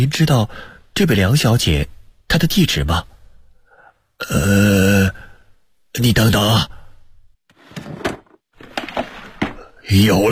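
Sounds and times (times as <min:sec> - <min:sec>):
speech: 0:00.0 - 0:03.1, 0:04.2 - 0:05.3, 0:06.0 - 0:06.8, 0:09.9 - 0:10.3
drawer being opened and rummaged through: 0:07.5 - 0:09.7
wooden knocks and scraping clatter from a drawer: 0:07.5 - 0:09.7.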